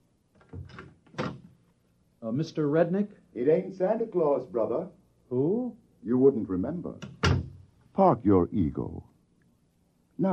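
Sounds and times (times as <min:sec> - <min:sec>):
speech: 0:02.2 - 0:07.1, 0:08.0 - 0:09.1
door thunk: 0:07.0 - 0:07.6.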